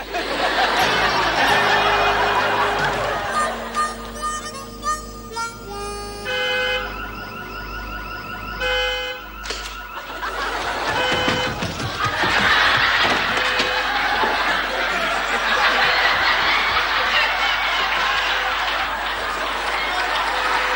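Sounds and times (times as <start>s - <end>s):
faint laughter: 0.0s - 4.4s, 9.4s - 20.7s
car alarm blaring electronic siren tones: 0.2s - 20.7s.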